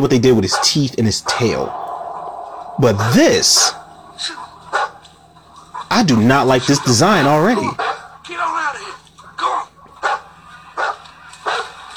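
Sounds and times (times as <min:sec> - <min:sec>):
speech: 0:00.0 - 0:01.9, 0:02.8 - 0:04.4, 0:05.9 - 0:07.8
quiet steady hum: 0:00.0 - 0:11.9
dog barking in a film scene: 0:02.8 - 0:05.0, 0:07.7 - 0:08.2, 0:09.4 - 0:11.9.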